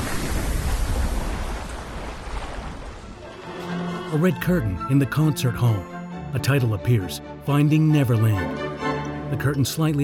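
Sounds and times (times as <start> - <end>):
massive chunk of earth crashing into the ocean: 0.0 - 3.2
churning water and rumbling surf: 0.0 - 3.8
speech: 4.1 - 8.7, 9.3 - 10.0.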